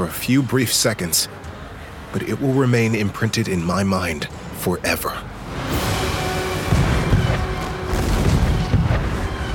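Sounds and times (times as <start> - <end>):
speech: 0.0 - 5.4
warship cannons firing a broadside at sea: 6.6 - 9.4.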